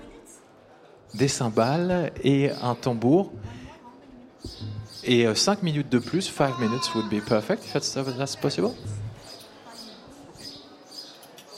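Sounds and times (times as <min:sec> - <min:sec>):
speech: 0:01.1 - 0:03.6, 0:04.4 - 0:09.0
birds chirping busily outdoors: 0:02.4 - 0:03.7, 0:04.4 - 0:11.5.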